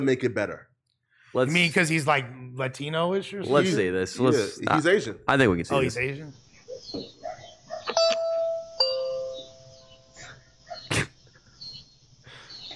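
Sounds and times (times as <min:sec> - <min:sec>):
speech: 0:00.0 - 0:00.7, 0:01.3 - 0:07.1
doorbell chiming a two-note ding-dong: 0:08.0 - 0:09.9.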